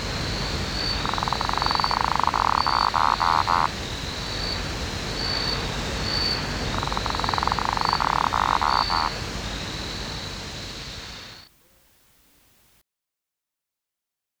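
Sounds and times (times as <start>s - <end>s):
background hum: 0.0s - 12.3s
Lesueur's frog Litoria lesueurii pulsed trill: 0.6s - 4.5s, 5.3s - 9.4s.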